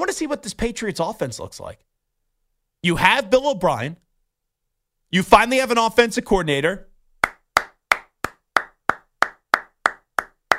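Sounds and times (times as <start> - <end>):
speech: 0.0 - 1.9, 2.8 - 4.0, 5.1 - 6.9
slow steady golf clap of crisp single hand claps: 7.2 - 10.5.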